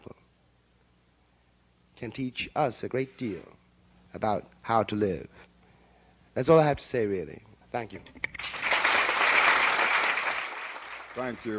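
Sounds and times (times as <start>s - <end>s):
speech: 2.0s - 5.5s, 6.4s - 8.3s, 11.2s - 11.5s
audience applause after a speech: 8.4s - 11.5s.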